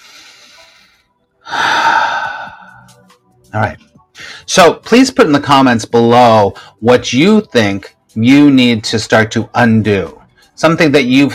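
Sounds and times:
big deep breath: 0.0s - 3.1s, 4.1s - 4.5s
speech: 1.5s - 1.7s, 3.5s - 3.8s, 4.5s - 11.3s.

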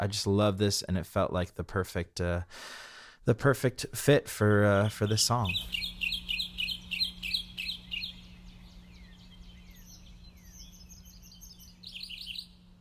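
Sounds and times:
speech: 0.0s - 6.0s
several birds chirping and singing: 4.7s - 12.7s
steady low hum: 4.7s - 12.7s.

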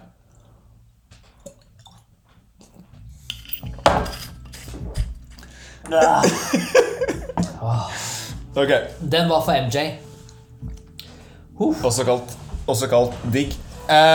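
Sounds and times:
glasses clinking together in a toast: 3.2s - 7.5s
light chuckling: 5.9s - 7.7s
speech: 5.9s - 10.0s, 11.6s - 14.1s.

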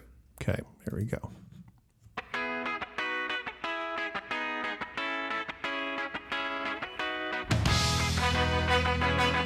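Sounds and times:
speech: 0.5s - 1.4s
1990s ska rock song with distorted guitar and drums: 2.4s - 9.4s.

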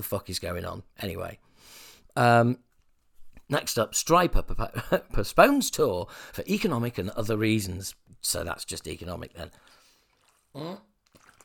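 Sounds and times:
speech: 0.0s - 2.7s, 3.5s - 9.8s, 10.6s - 10.9s
gulp of water: 9.5s - 11.4s.

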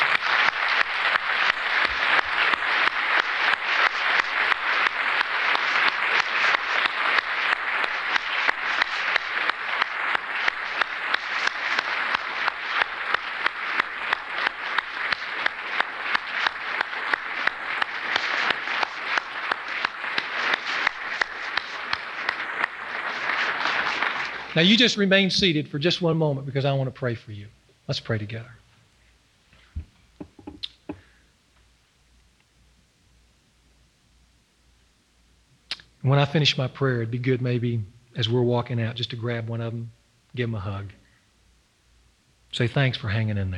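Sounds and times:
large standing audience applauding: 0.0s - 25.5s
speech: 24.6s - 28.6s, 36.1s - 41.0s, 42.6s - 43.5s.

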